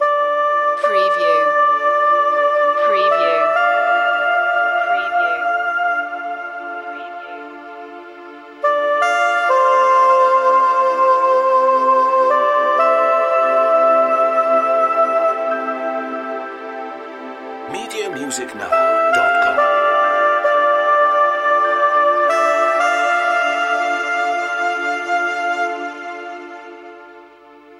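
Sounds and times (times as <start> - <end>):
soprano saxophone breathy air loop: 0.0 - 27.7.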